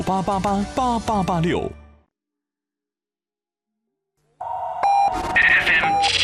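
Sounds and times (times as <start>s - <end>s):
speech: 0.0s - 1.8s
radio hourly time signal beeps: 4.4s - 6.2s.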